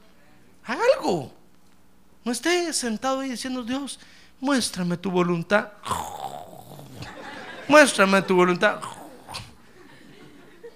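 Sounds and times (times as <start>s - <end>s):
speech: 1.0s - 1.4s, 2.2s - 6.1s, 7.7s - 8.9s
man imitating a snore with his voice: 5.8s - 7.2s, 8.7s - 9.6s
laughter: 6.9s - 10.7s.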